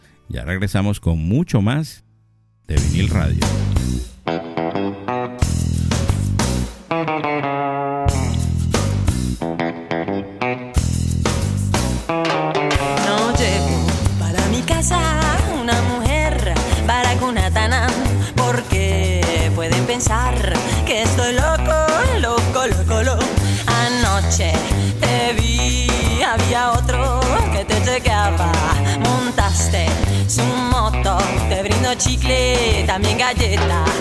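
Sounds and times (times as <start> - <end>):
speech: 0.3 - 2.0, 2.7 - 3.7, 32.0 - 34.0
person singing in Spanish: 2.7 - 3.6, 12.7 - 34.0
Colombian rock song from 1996 on the radio: 2.7 - 34.0
distorted guitars: 2.7 - 34.0.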